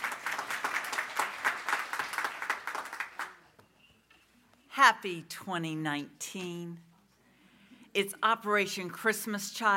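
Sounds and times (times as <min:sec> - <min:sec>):
crowd applauding: 0:00.0 - 0:03.5
speech: 0:04.8 - 0:06.9, 0:08.0 - 0:09.7.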